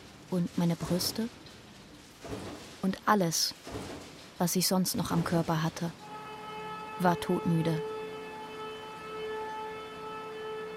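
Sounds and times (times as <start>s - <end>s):
speech: 0.3s - 1.4s, 2.2s - 6.0s, 7.0s - 7.9s
droning siren signalling the end of the workday: 6.0s - 10.7s.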